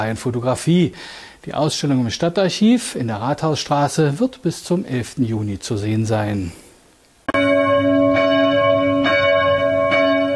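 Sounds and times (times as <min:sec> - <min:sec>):
speech: 0:00.0 - 0:06.6
church bells ringing for service: 0:07.3 - 0:10.3.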